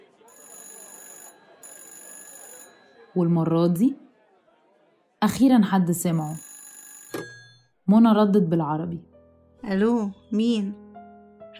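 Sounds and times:
telephone ringing in shrill electronic bursts: 0:00.2 - 0:04.0, 0:06.0 - 0:07.8
speech: 0:03.2 - 0:04.0, 0:05.2 - 0:06.5, 0:07.9 - 0:10.8.

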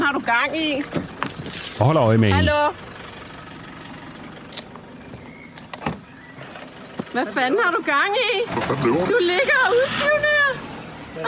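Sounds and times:
car engine idling: 0:00.0 - 0:11.2
speech: 0:00.1 - 0:01.1, 0:01.8 - 0:02.9, 0:07.2 - 0:10.4
mechanical thunk of car trunk lid opening: 0:05.7 - 0:06.1.

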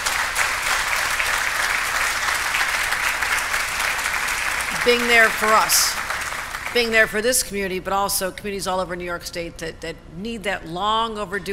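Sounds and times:
audience applause: 0:00.0 - 0:06.9
speech: 0:04.8 - 0:06.0, 0:06.8 - 0:11.5.

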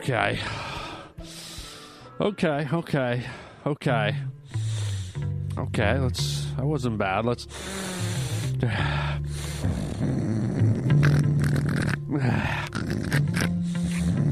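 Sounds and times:
speech: 0:00.0 - 0:01.3, 0:02.2 - 0:04.4, 0:05.2 - 0:07.8, 0:08.6 - 0:09.0
loud nasal snort: 0:09.4 - 0:14.3.

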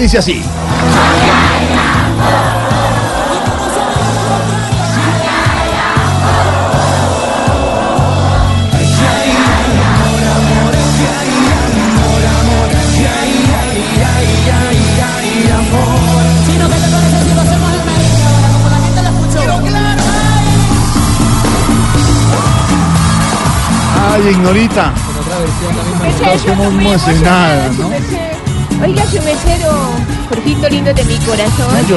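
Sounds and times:
speech: 0:00.0 - 0:01.4, 0:24.2 - 0:25.1, 0:26.2 - 0:27.9, 0:28.8 - 0:31.9
concert crowd cheering and shouting: 0:00.0 - 0:30.8
loud pounding live music: 0:00.0 - 0:31.9
huge concert crowd singing along at full voice: 0:00.6 - 0:23.4.

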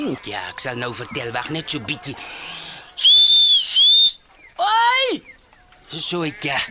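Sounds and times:
speech: 0:00.0 - 0:03.1, 0:04.6 - 0:05.3, 0:05.9 - 0:06.7
person whistling loudly to call sheep: 0:03.0 - 0:04.2.

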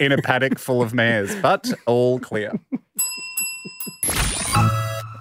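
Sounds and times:
speech: 0:00.0 - 0:03.1
bell ringing: 0:03.0 - 0:04.9.

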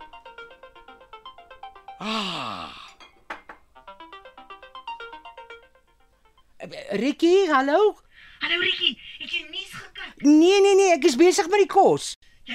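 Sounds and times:
mobile phone ringtone with bright rapid melody of chiming notes: 0:00.0 - 0:06.6
speech: 0:02.0 - 0:02.7, 0:06.6 - 0:09.5, 0:10.2 - 0:12.2
short vocal exclamation: 0:02.0 - 0:02.9.

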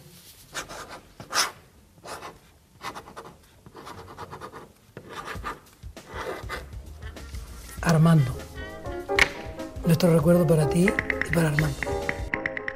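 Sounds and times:
ballpoint pen scratching while writing a word on paper: 0:00.5 - 0:08.0
speech: 0:08.0 - 0:08.4, 0:09.9 - 0:11.9.

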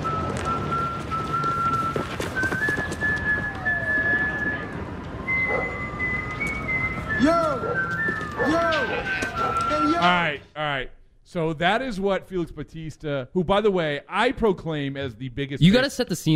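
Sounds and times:
shrill whistled walk-up entrance tune: 0:00.0 - 0:10.1
speech: 0:10.0 - 0:16.3.

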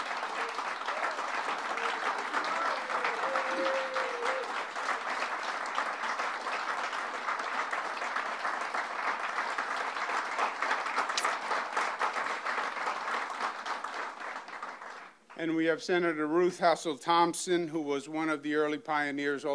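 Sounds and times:
crowd applauding: 0:00.0 - 0:15.2
speech: 0:15.4 - 0:19.5.

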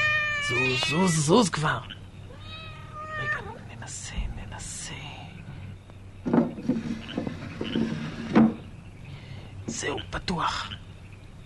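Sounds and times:
cat meowing: 0:00.0 - 0:01.4, 0:02.3 - 0:03.7
speech: 0:00.5 - 0:02.0, 0:09.8 - 0:10.8
faint knocking: 0:06.2 - 0:08.7.

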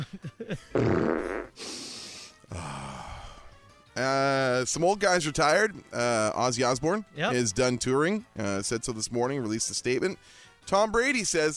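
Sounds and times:
speech: 0:00.0 - 0:01.1, 0:04.7 - 0:11.5
comedic fart sound effect: 0:00.7 - 0:01.6.

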